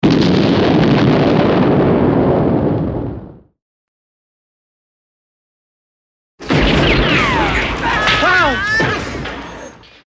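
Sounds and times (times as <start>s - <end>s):
explosions: 0.0s - 3.5s, 6.4s - 9.9s.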